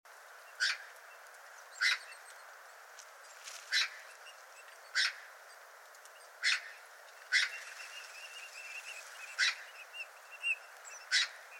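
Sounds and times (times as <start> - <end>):
Eurasian magpie Pica pica coarse scratchy calls: 3.7 - 4.1, 4.9 - 5.3, 6.4 - 11.4.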